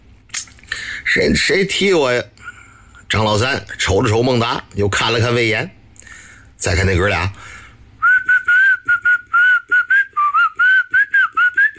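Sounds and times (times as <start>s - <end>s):
speech: 1.2s - 2.3s, 3.1s - 5.8s, 6.6s - 7.6s
person whistling a tune: 8.0s - 11.7s.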